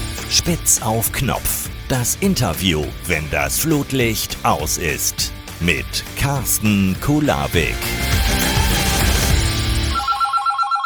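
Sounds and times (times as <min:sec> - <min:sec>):
dense musical passage: 0:00.0 - 0:10.0
speech: 0:00.3 - 0:08.4
telephone ringing in electronic bursts: 0:09.8 - 0:10.8.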